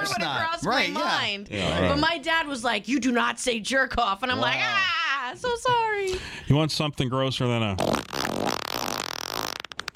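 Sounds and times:
speech: 0.0 - 8.6
long loud buzzy fart: 7.8 - 9.9.

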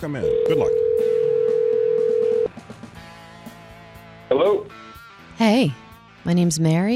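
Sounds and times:
speech: 0.0 - 1.2, 4.3 - 6.9
telephone dial tone: 0.3 - 2.5.

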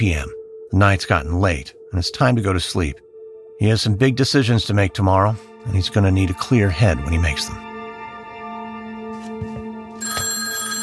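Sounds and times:
speech: 0.0 - 3.0, 3.6 - 7.7
telephone ringing with a buzzing electronic tone inside an estate: 10.0 - 10.8.

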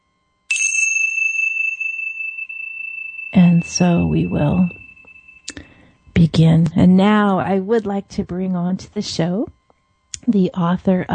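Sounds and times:
bright metallic chime ringing: 0.5 - 6.0
speech: 3.6 - 4.8, 6.2 - 9.6, 10.3 - 11.1.

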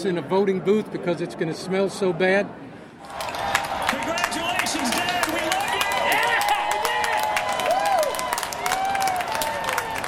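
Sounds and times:
speech: 0.0 - 3.3
large outdoor crowd of supporters cheering and clapping outside an arena: 3.0 - 10.0
whoops and shouts from the crowd: 5.4 - 10.0.

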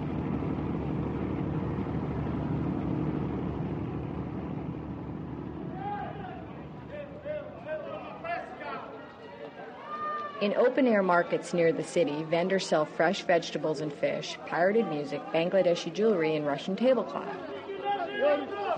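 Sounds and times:
ferry engines growling: 0.0 - 8.4
car traffic: 0.0 - 8.5
speech: 10.4 - 17.5, 18.2 - 18.7.

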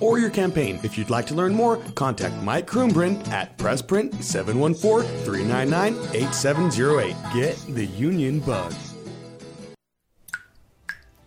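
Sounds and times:
speech: 0.0 - 8.9
music: 0.0 - 9.8, 10.9 - 11.2
water drips from a leak: 10.2 - 11.2.

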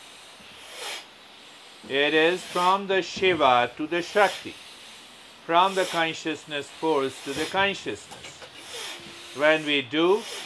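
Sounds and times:
nasal breath during alternate-nostril breathing practice: 0.0 - 10.4
speech: 1.8 - 4.6, 5.5 - 8.3, 9.4 - 10.4.

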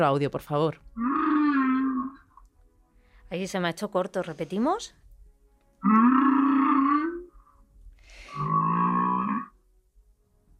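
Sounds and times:
speech: 0.0 - 1.1, 3.3 - 5.0, 5.8 - 6.0
humpback whale song moaning: 1.0 - 2.3, 5.8 - 7.6, 8.3 - 9.6.

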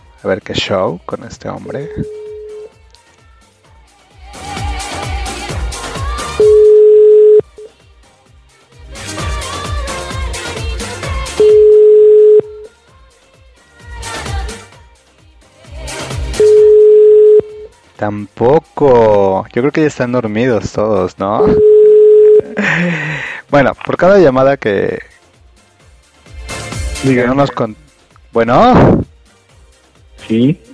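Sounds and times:
music: 0.0 - 30.7
speech: 0.2 - 2.2, 18.1 - 21.7, 22.6 - 25.2, 27.0 - 27.8, 28.4 - 29.1, 30.2 - 30.7
outgoing telephone call ringback tone: 1.8 - 2.7, 6.4 - 7.7, 11.4 - 12.7, 16.4 - 17.7, 21.4 - 22.6
laughter: 22.4 - 23.2.

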